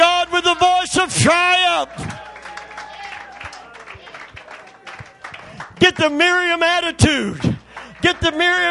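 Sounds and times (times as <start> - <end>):
crowd noise: 0.0 - 8.6
speech: 1.0 - 2.1, 5.8 - 8.6
audience clapping along in rhythm: 1.8 - 8.6.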